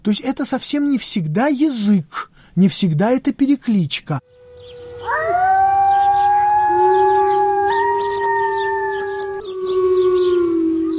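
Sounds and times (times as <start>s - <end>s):
speech: 0.0s - 4.4s
faint chirping: 4.2s - 10.9s
wolf howling: 4.3s - 10.9s.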